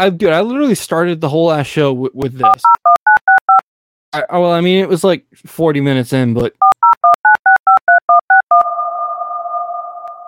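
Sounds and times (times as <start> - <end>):
speech: 0.0 - 3.0, 4.1 - 6.7
DTMF touch-tone keypad beeps with reverb: 2.4 - 3.6, 6.6 - 8.6
steady electronic tone with reverb: 8.6 - 10.2.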